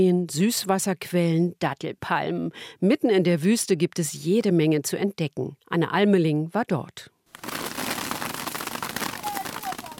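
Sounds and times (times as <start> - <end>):
speech: 0.0 - 7.6
dates pattering onto a huge plastic tarp from a shaken date palm: 7.3 - 9.9.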